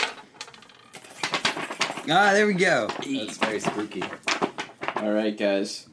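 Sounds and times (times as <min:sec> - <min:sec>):
sheet of paper shaken to fake thunder: 0:01.0 - 0:05.2
speech: 0:02.1 - 0:04.3, 0:05.0 - 0:05.9.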